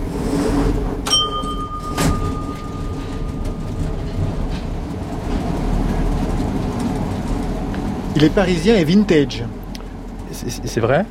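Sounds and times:
Paris metro train rumbling along the track: 0.0 - 11.0
sharp metallic clank: 1.0 - 4.7
speech: 8.2 - 9.6, 10.4 - 11.0.

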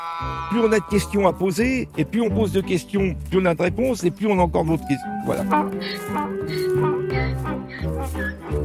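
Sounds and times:
donkey braying: 0.0 - 1.8, 5.1 - 8.6
speech: 0.1 - 8.6.

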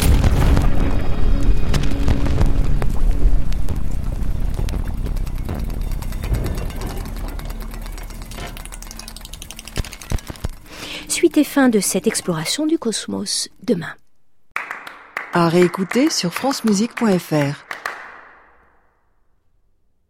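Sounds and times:
deep grainy bass rumble: 0.0 - 10.7
crackling granular bursts: 0.0 - 12.4
scattered clicks: 4.5 - 11.3
speech: 11.4 - 14.0, 15.4 - 17.8.

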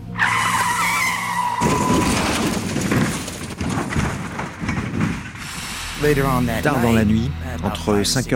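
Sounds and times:
bus tires skidding on the road: 0.0 - 2.7
heavy rumbling scraping road noise: 0.0 - 7.6
speech: 6.0 - 8.3.

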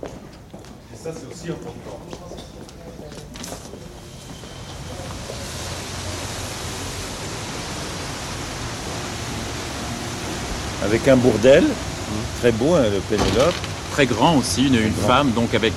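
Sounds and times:
speech: 1.0 - 2.7, 10.8 - 15.7
water of the Seine river rushing: 4.7 - 15.7.

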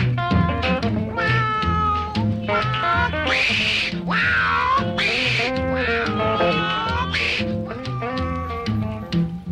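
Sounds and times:
rhythm-and-blues band track recorded in Memphis, Tennessee: 0.0 - 9.4
cat meowing and yowling: 1.1 - 9.4.

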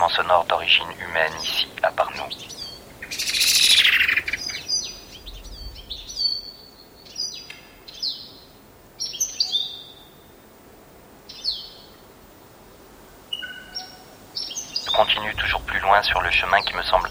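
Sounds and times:
speech: 0.0 - 3.4, 15.9 - 17.0
birds chirping outdoors: 0.0 - 17.0
soft ambient noise: 0.0 - 17.0.

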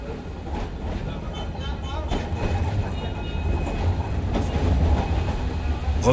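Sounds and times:
tram rattling along its rails in Algiers: 0.0 - 6.1.

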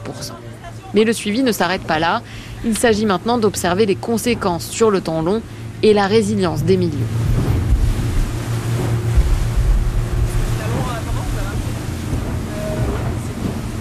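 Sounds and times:
boat motor droning as the vessel heads out to sea toward reefs off northern Mayotte: 0.0 - 13.7
water noise: 0.0 - 13.7
wind: 0.0 - 13.7
speech: 0.2 - 7.3.

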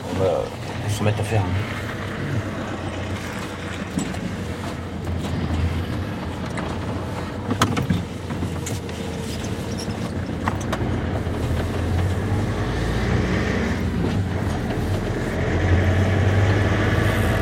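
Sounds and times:
fisherman's truck engine running with a low rumble: 0.0 - 17.4
speech: 0.2 - 2.6
clanks and knocks: 3.0 - 12.3.

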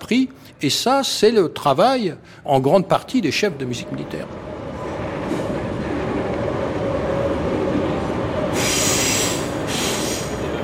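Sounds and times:
speech: 0.1 - 4.5
RER commuter train wheels rumbling on rails in Paris: 3.6 - 10.6.

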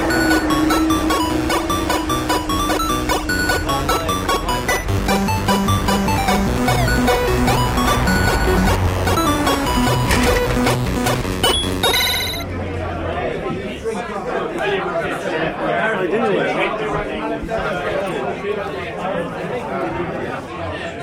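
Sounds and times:
crowd chatter in a packed pub: 0.0 - 11.3, 11.9 - 21.0
bright electronic ringing: 0.0 - 12.5.

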